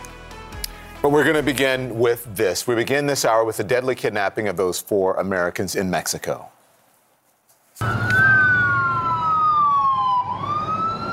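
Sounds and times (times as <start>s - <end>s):
speech: 1.0s - 6.6s
ambulance siren wailing in a convoy of Mexican soldiers: 7.8s - 11.1s.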